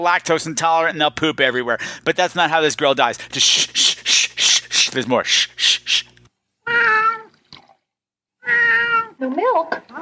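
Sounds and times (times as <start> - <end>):
speech: 0.0 - 4.3, 4.9 - 6.1, 9.5 - 10.0
cat meowing: 6.7 - 7.3, 8.4 - 9.2.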